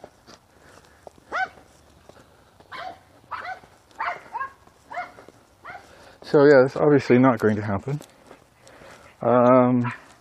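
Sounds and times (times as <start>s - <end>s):
small dog yapping: 1.3s - 1.6s, 2.7s - 5.9s, 9.8s - 10.1s
speech: 6.3s - 8.1s, 9.2s - 10.0s.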